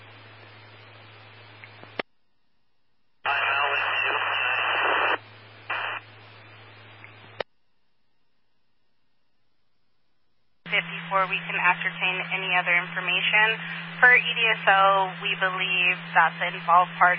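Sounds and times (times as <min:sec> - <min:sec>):
radio scanner static at night: 0:03.2 - 0:07.4, 0:10.7 - 0:17.1
speech: 0:11.1 - 0:17.1.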